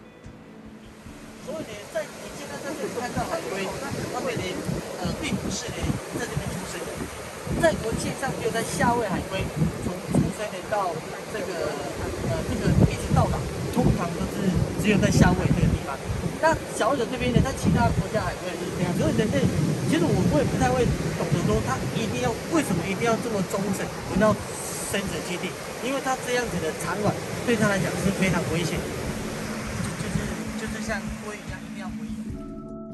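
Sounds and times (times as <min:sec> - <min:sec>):
wind buffeting on a shoreline: 0:00.6 - 0:32.8
waves washing in on a shoreline: 0:00.7 - 0:32.3
indistinct voices of an interview talking: 0:01.4 - 0:32.5.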